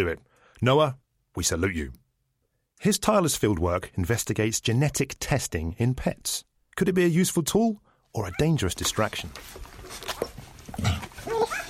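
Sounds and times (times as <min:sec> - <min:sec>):
speech: 0:00.0 - 0:02.0, 0:02.8 - 0:10.2
six-day-old golden retriever puppies squeaking and whimpering while feeding: 0:09.9 - 0:11.6.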